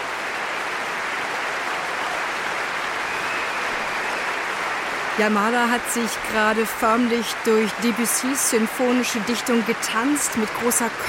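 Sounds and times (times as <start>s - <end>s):
large concert audience cheering and whistling in a concert hall: 0.0s - 5.2s
large concert audience clapping in a concert hall: 0.0s - 11.0s
speech: 5.2s - 11.0s.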